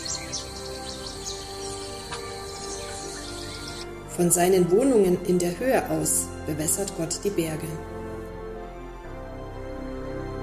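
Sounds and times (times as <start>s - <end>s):
birds chirping and calling: 0.0s - 4.0s
speech: 4.2s - 8.0s.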